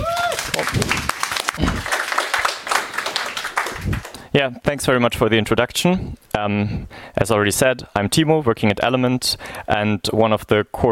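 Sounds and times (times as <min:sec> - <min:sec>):
audience applauding: 0:00.0 - 0:04.2
voice rising over clapping: 0:00.0 - 0:04.2
speech: 0:04.4 - 0:10.8.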